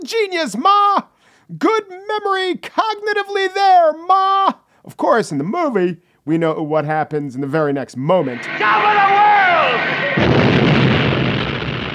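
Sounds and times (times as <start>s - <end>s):
speech: 0.1s - 10.3s
huge explosion in a movie scene: 8.4s - 11.9s.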